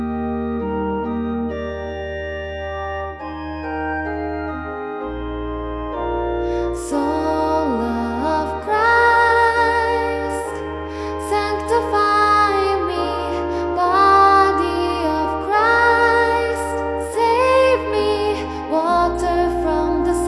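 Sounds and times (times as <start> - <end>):
organ: 0.0 - 20.2
person singing: 6.5 - 20.2.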